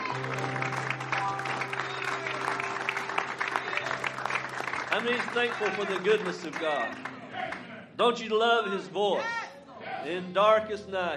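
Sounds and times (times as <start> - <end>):
church congregation clapping their hands in praise: 0.0 - 7.7
speech: 5.0 - 7.1, 8.0 - 9.4, 10.0 - 11.1.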